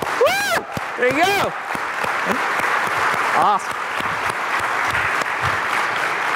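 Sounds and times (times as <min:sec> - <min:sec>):
audience applauding at a talk: 0:00.0 - 0:06.3
speech: 0:01.0 - 0:01.7, 0:03.4 - 0:03.8.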